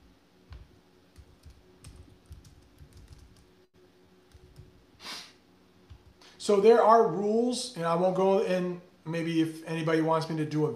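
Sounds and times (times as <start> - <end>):
typing on a computer keyboard: 1.2 - 3.5
speech: 6.4 - 10.7.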